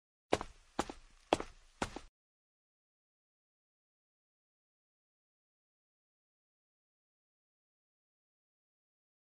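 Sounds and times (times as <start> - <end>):
footsteps in flat shoes: 0.3 - 2.1.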